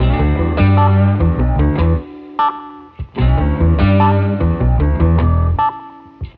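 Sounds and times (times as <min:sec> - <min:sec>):
guitar: 0:00.0 - 0:06.3.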